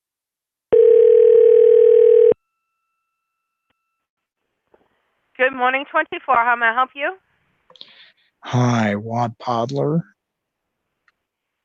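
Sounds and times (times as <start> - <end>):
steady mid-pitched telephone dial tone: 0.7 - 2.4
speech: 5.4 - 10.1.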